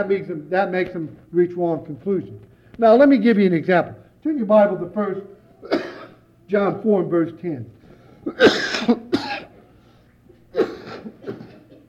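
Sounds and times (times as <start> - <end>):
speech: 0.0 - 5.9, 6.5 - 9.0
man coughing: 5.6 - 6.2, 8.2 - 9.6, 10.5 - 11.8.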